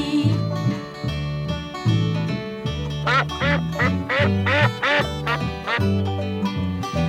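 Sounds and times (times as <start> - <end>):
bouncy instrumental tune with a plodding bass line: 1.1 - 7.0
duck quacking: 3.0 - 5.9.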